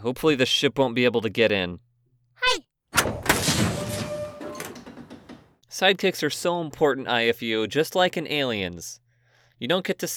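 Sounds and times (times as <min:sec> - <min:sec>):
speech: 0:00.0 - 0:03.1, 0:05.8 - 0:09.0, 0:09.6 - 0:10.1
door shutting: 0:02.9 - 0:05.5.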